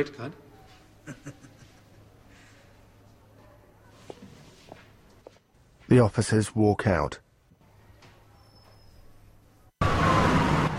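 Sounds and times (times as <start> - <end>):
speech: 0.0 - 0.4, 1.0 - 1.4, 5.9 - 7.2
laughter: 1.0 - 2.1
busy street traffic in central London: 9.4 - 10.7.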